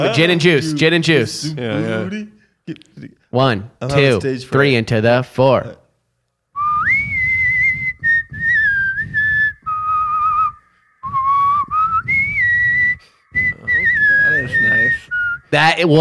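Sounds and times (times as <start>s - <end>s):
speech: 0.0s - 5.8s, 15.5s - 15.9s
person whistling a song melody: 6.6s - 15.6s.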